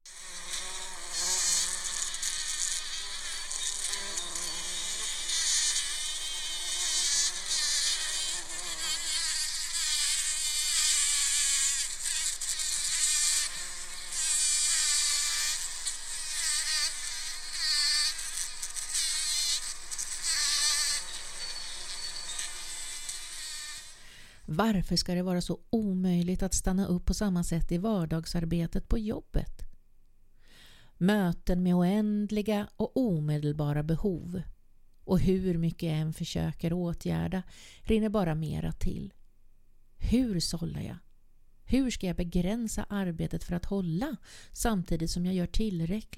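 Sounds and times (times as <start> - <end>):
bumblebees buzzing in a poppy: 0.1 - 24.1
speech: 24.5 - 29.6, 31.0 - 34.5, 35.1 - 39.2, 40.0 - 41.0, 41.7 - 46.1.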